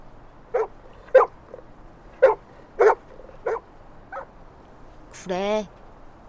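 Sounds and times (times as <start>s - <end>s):
dog barking: 0.5s - 1.6s, 2.2s - 4.3s
speech: 5.2s - 5.8s.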